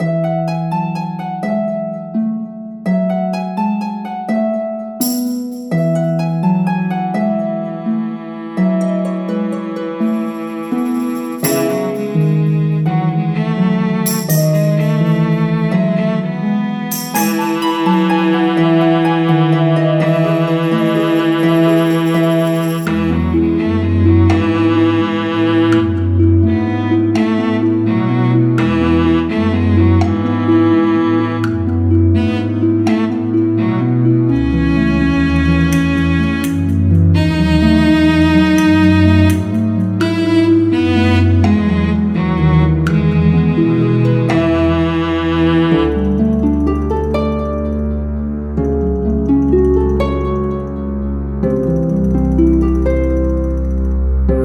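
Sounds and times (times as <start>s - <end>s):
fairy tale music: 0.0s - 54.4s.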